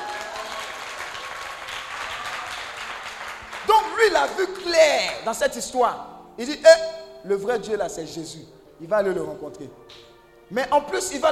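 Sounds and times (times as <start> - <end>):
applause from a congregation during a church sermon: 0.0 - 5.2
speech: 3.7 - 11.3.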